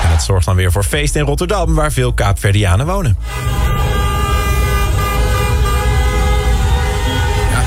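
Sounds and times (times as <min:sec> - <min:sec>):
speech: 0:00.1 - 0:03.7
car horns honking in a busy street: 0:03.2 - 0:07.6
steady rumble of traffic: 0:03.3 - 0:07.6.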